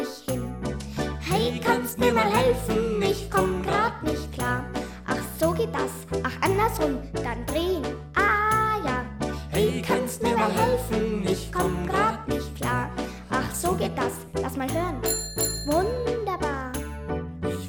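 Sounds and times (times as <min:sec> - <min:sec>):
lively children's song: 0:00.0 - 0:17.6
steady bass accompaniment: 0:00.0 - 0:17.6
person singing: 0:01.1 - 0:07.0, 0:08.2 - 0:14.9
bicycle bell ringing in bright tinkles: 0:15.0 - 0:16.0.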